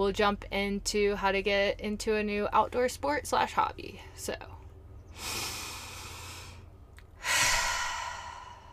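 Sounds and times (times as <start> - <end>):
speech: 0.0 - 4.6, 5.2 - 5.5
deep breath in and out: 5.1 - 8.7.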